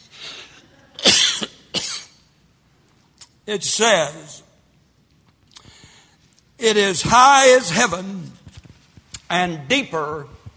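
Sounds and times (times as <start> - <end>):
sharp coughs: 1.0 - 2.2
speech: 3.5 - 4.4, 6.6 - 8.4, 9.3 - 10.4
breathy inhale: 5.6 - 6.2.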